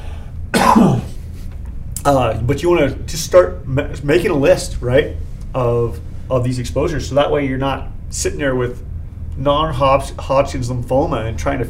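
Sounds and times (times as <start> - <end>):
person coughing: 0.5 - 1.2
speech: 2.0 - 11.6.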